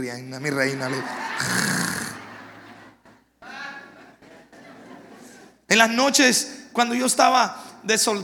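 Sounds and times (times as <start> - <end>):
speech: 0.0 - 1.9, 5.8 - 8.2
laughter: 0.4 - 5.6
person imitating snoring: 1.4 - 2.2.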